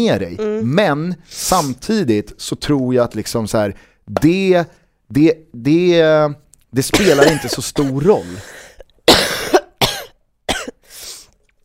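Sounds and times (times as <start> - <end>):
speech: 0.0 - 8.6
person coughing: 6.9 - 10.9.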